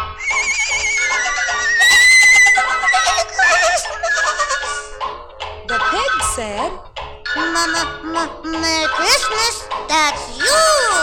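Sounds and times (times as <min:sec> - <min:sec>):
human voice imitating a horse's whinny: 0:00.2 - 0:04.0
laughter: 0:01.1 - 0:05.0
speech: 0:07.6 - 0:11.0.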